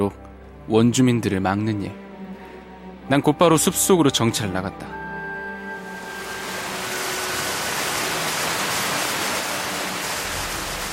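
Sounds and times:
speech: 0:00.0 - 0:02.0, 0:03.1 - 0:05.0
waterfall in a forest rushing, heard from below: 0:05.4 - 0:10.9.

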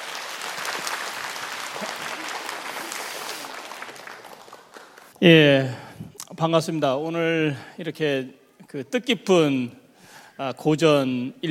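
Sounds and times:
audience at a lecture in Incheon South Korea clapping to welcome speaker: 0:00.0 - 0:05.2
speech: 0:05.2 - 0:05.8, 0:06.4 - 0:09.8, 0:10.4 - 0:11.4.

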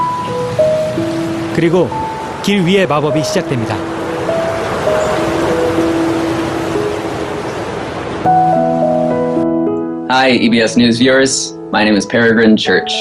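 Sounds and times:
rain falling across a city street in Seattle USA: 0:00.0 - 0:08.8
soft chiming musical notes: 0:00.0 - 0:09.6
speech: 0:01.6 - 0:03.9, 0:10.1 - 0:12.9.

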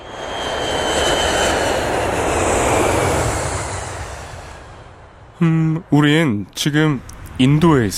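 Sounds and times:
airplane cabin engine drone with airy hiss: 0:00.0 - 0:07.9
speech: 0:05.4 - 0:07.9.

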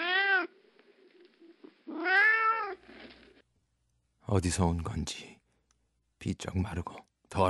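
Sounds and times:
skinny dirty white cat meowing on a water-barrel lid: 0:00.0 - 0:00.6, 0:01.9 - 0:02.8
speech: 0:04.3 - 0:05.4, 0:06.2 - 0:07.4.

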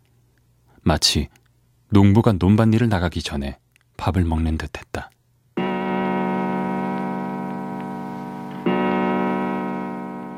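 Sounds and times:
speech: 0:00.9 - 0:05.1
clock striking seven o'clock in the morning: 0:05.6 - 0:10.3.

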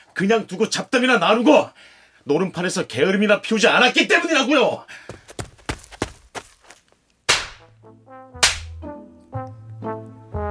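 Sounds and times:
speech: 0:00.2 - 0:05.2
hard slap across both cheeks: 0:07.3 - 0:07.7, 0:08.4 - 0:08.8.

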